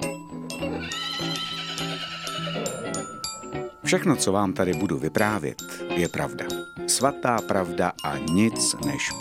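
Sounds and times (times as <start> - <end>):
horse neighing in a long shrill whinny: 0.7 - 3.2
speech: 3.9 - 9.1.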